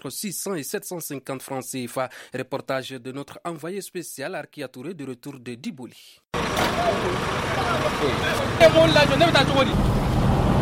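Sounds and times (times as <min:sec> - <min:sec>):
speech: 0:00.0 - 0:10.2
idling trucks parked during a border closure: 0:06.4 - 0:09.7
steady rumble of traffic in a busy town street: 0:06.4 - 0:10.6.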